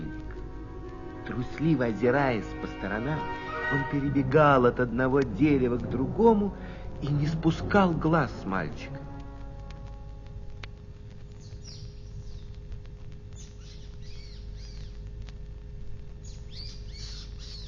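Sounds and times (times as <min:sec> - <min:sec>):
low rumble: 0:00.0 - 0:17.6
speech: 0:01.3 - 0:09.1
small bird chirping: 0:11.3 - 0:12.6, 0:13.3 - 0:15.1, 0:16.2 - 0:17.6.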